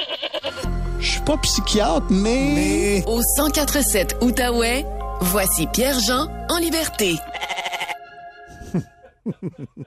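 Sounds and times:
goat bleating: 0:00.0 - 0:00.7, 0:07.2 - 0:08.0
speech: 0:01.3 - 0:07.3, 0:08.7 - 0:09.8
laughter: 0:08.4 - 0:09.8.

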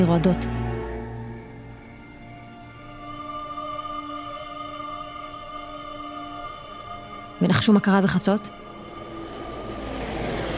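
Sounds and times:
speech: 0:00.0 - 0:00.6, 0:07.4 - 0:08.6
airplanes passing overhead: 0:08.6 - 0:10.5.

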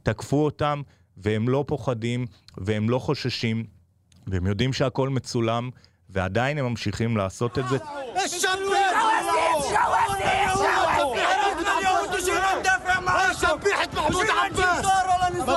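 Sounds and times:
speech: 0:00.0 - 0:15.5
protesters shouting at a demonstration: 0:07.5 - 0:15.5.

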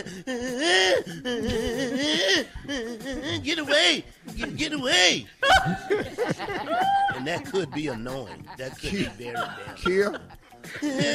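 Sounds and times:
laughter: 0:00.0 - 0:03.7, 0:05.4 - 0:11.1
man vocally imitating panicked whimpering of someone fleeing a biting dog: 0:00.0 - 0:04.6, 0:06.6 - 0:11.1
speech: 0:00.0 - 0:11.1.

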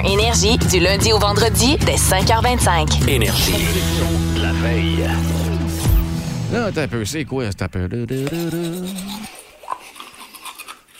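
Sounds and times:
speech: 0:00.0 - 0:05.5, 0:06.5 - 0:09.4
electric buzzing: 0:03.3 - 0:06.8.

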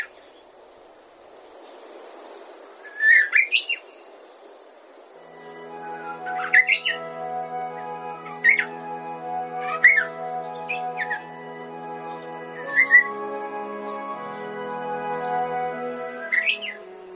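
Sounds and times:
steady sustained musical tone: 0:05.2 - 0:17.1
Japanese bush warbler chirping in the Sayama Hills of Tokorozawa: 0:05.3 - 0:17.1.

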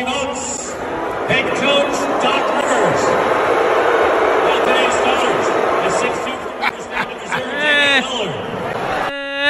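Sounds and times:
large arena crowd booing weakly during intros: 0:00.7 - 0:09.4
amplified voice: 0:04.5 - 0:08.4
laughter: 0:05.8 - 0:09.4.

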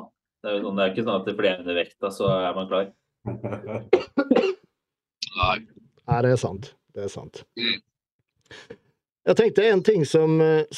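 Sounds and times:
speech: 0:00.4 - 0:04.6, 0:05.4 - 0:07.9, 0:08.5 - 0:10.7
rough fit of coughing: 0:03.9 - 0:04.7.

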